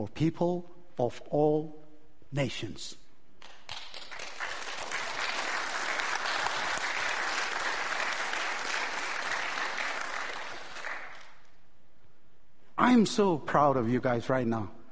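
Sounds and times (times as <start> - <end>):
speech: 0.0 - 3.0, 12.9 - 14.8
congregation clapping hands in applause: 3.4 - 11.6.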